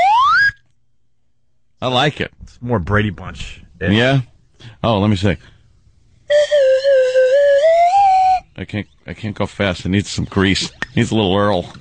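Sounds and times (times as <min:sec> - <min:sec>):
whistle blown in a sustained clear tone: 0:00.0 - 0:00.6, 0:06.3 - 0:08.5
speech: 0:01.8 - 0:05.5, 0:06.3 - 0:06.6, 0:08.6 - 0:11.8.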